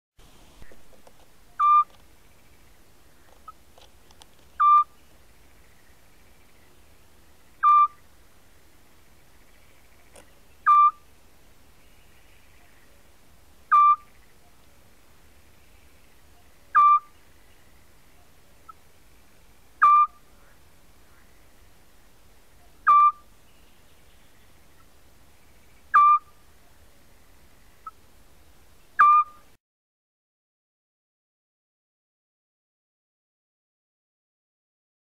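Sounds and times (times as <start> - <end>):
scops owl call: 1.5 - 3.6, 4.6 - 5.0, 7.6 - 8.1, 9.8 - 11.1, 13.7 - 14.6, 16.2 - 17.4, 19.8 - 21.5, 22.5 - 23.3, 25.7 - 26.8, 29.0 - 29.5.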